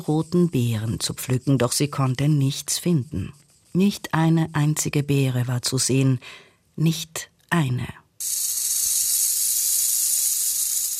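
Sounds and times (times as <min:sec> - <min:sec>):
speech: 0:00.0 - 0:08.5
loud sustained bright airy hiss: 0:08.2 - 0:10.9.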